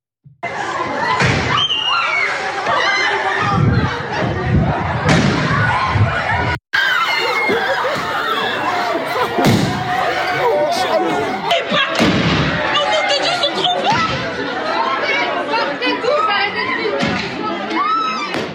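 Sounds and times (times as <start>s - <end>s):
students shouting and chattering in panic inside a high school: 0.6s - 4.2s, 4.8s - 16.9s
laughter: 6.9s - 17.7s
firework mortar bursts inside a high school in Seine-et-Marne: 12.0s - 12.6s, 18.4s - 18.5s.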